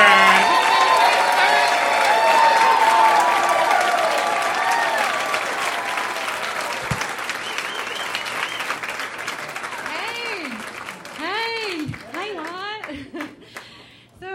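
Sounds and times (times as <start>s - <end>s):
scattered cheers and whoops: 0.0s - 8.9s
crowd applauding: 0.0s - 13.8s.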